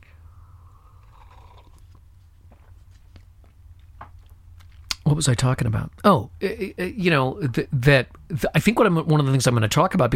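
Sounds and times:
steady low hum: 0.0s - 10.1s
airy slurp of coffee: 1.0s - 2.0s
speech: 5.1s - 10.1s.

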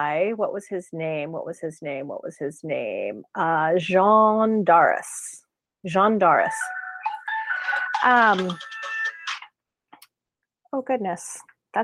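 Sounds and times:
speech: 0.0s - 6.8s, 8.0s - 8.8s, 10.7s - 11.8s
mobile phone ringing with electronic tone: 6.5s - 9.5s.

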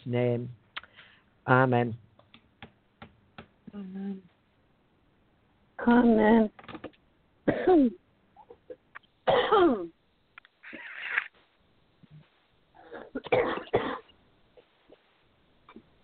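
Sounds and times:
speech: 0.0s - 0.6s, 1.5s - 2.0s, 3.7s - 4.3s, 5.8s - 8.0s, 9.3s - 10.0s, 13.2s - 14.0s
person coughing during a spoken prayer: 7.5s - 8.0s, 8.6s - 9.9s, 12.8s - 14.1s.

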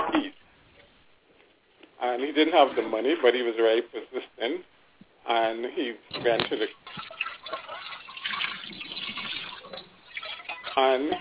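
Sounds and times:
speech: 2.2s - 7.0s, 10.8s - 11.1s
dishes clattering: 6.1s - 11.1s
water running from a tap into a sink: 6.8s - 11.1s.

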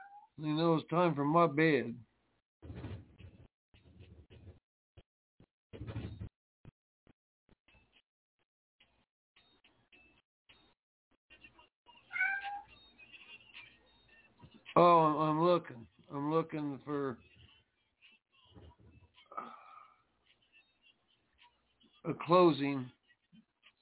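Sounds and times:
speech: 0.4s - 2.8s, 14.8s - 17.3s, 22.0s - 23.0s
cats meowing: 12.0s - 12.8s.

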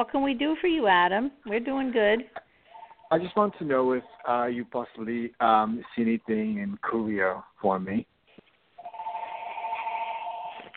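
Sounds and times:
speech: 0.0s - 2.4s, 3.1s - 8.1s
phone ringing in the background on a caller's end of a phone call: 2.7s - 3.4s, 8.8s - 10.7s.

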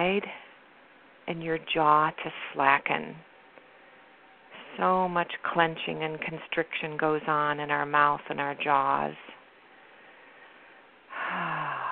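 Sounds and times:
speech: 0.0s - 0.5s, 1.3s - 3.3s, 4.8s - 9.3s
deep breath in through the nose and out through the mouth during a relaxation breathing exercise: 9.7s - 11.9s.

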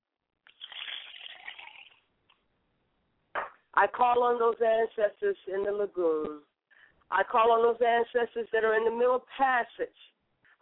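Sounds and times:
liquid poured as a libation during a ritual: 0.5s - 2.0s
speech: 3.8s - 6.5s, 7.1s - 10.1s.

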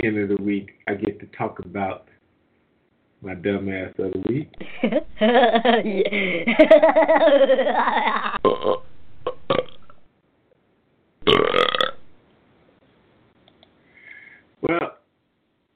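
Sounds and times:
speech: 0.0s - 2.1s, 3.2s - 8.9s
person burping: 7.7s - 10.0s, 11.2s - 12.1s.

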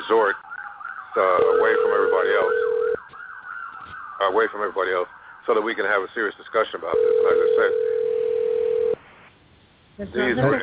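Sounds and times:
speech: 1.2s - 2.7s, 4.2s - 7.9s, 10.0s - 10.6s
telephone ringback tone heard down the line while calling Bermuda: 1.4s - 3.0s, 7.0s - 9.0s.

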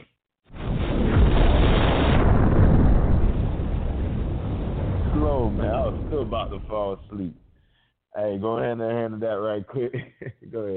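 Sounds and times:
bomb explosion in a video game: 0.5s - 7.6s
speech: 5.9s - 7.4s, 8.2s - 10.7s.

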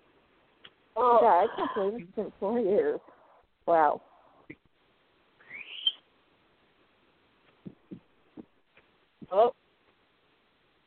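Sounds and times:
speech: 1.0s - 3.1s, 3.7s - 4.6s, 9.3s - 9.6s
pet bird giving a rising whistly squeal: 5.4s - 6.0s
soft low thumps: 7.6s - 8.6s.

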